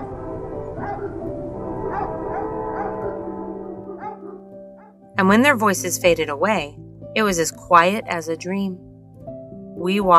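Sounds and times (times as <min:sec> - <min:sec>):
farm dogs barking: 0:00.0 - 0:05.0
steady low rumbling drone: 0:00.0 - 0:05.4
speech: 0:05.2 - 0:08.9, 0:09.8 - 0:10.1.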